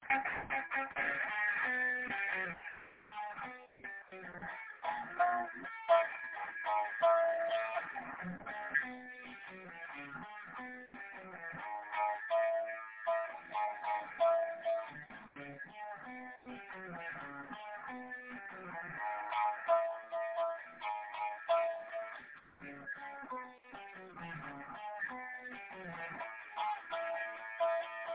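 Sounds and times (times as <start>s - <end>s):
urgent metal rhythm guitar lick: 0.0s - 28.1s.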